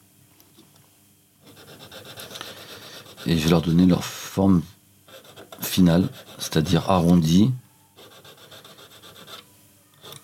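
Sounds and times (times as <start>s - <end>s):
small needle file rasping on metal jewellery claws: 1.4s - 3.5s, 5.1s - 6.6s, 8.0s - 9.4s
speech: 3.2s - 4.8s, 5.8s - 7.6s.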